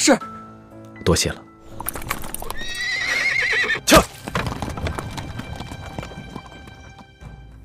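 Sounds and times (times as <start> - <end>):
speech: 0.0 - 0.4, 1.1 - 2.0
horse's hooves clip-clopping drawing a carriage: 1.6 - 7.6.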